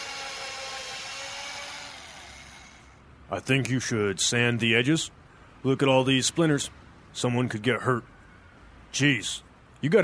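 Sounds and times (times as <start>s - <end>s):
power drill boring bolt holes in a 2x4 wooden board: 0.0s - 3.0s
speech: 3.3s - 8.1s, 8.9s - 10.0s.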